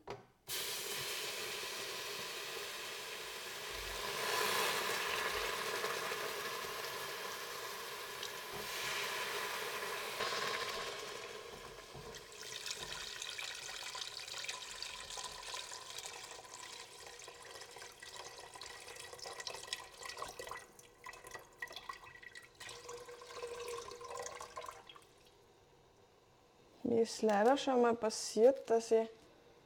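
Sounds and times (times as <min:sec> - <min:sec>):
steam hissing from a hot pan: 0:00.5 - 0:12.5
water poured into a hot pan: 0:00.5 - 0:25.4
speech: 0:27.0 - 0:29.2.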